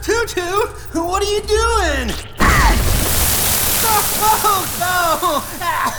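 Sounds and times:
speech: 0.2s - 2.3s, 4.0s - 5.9s
water spraying from a broken drain pipe: 2.3s - 5.9s
voices talking and exclaiming: 2.4s - 5.9s.

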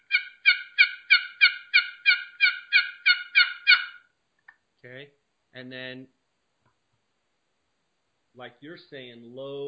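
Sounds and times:
turkey hen assembly yelps on a box call: 0.0s - 4.1s
speech: 4.8s - 6.2s, 8.4s - 9.6s.

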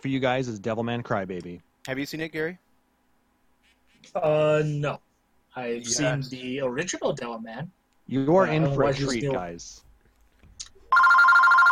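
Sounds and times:
speech: 0.0s - 2.6s, 4.0s - 9.9s
telephone bell ringing: 10.9s - 11.7s.

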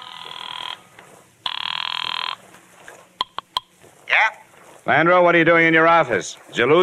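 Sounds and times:
telephone ringing with electronic trill: 0.0s - 2.4s
speech: 4.2s - 6.8s.

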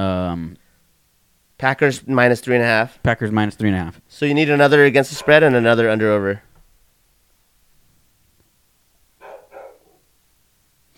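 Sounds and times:
speech: 0.0s - 0.6s, 1.6s - 6.5s
dog barking: 5.1s - 5.5s, 9.2s - 10.1s.

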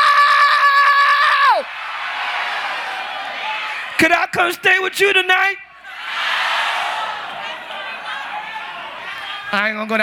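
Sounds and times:
crowd shouting in unison: 0.0s - 4.0s, 5.7s - 9.6s
speech: 4.0s - 5.6s, 9.5s - 10.0s.

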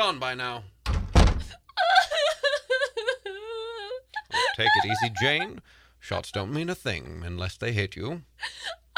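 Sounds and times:
speech: 0.0s - 0.8s, 4.6s - 8.8s
hotel corridor door latch thunk: 0.8s - 1.5s
laughter: 1.8s - 5.6s.

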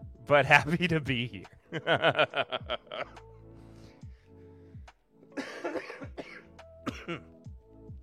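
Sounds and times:
speech: 0.3s - 3.3s, 7.1s - 7.3s
laughter: 1.7s - 3.2s
person coughing harshly: 5.4s - 7.3s
throat clearing: 5.4s - 7.3s.

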